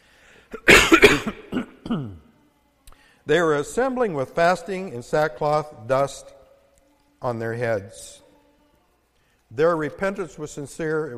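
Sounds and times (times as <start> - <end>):
person coughing while recovering from an illness: 0.5 - 2.2
speech: 1.9 - 2.2, 3.3 - 6.4, 7.2 - 8.2, 9.5 - 11.1.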